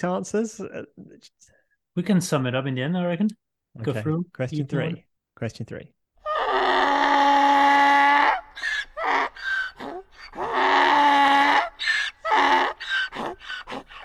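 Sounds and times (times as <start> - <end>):
speech: 0.0 - 6.0
donkey braying: 6.2 - 14.0.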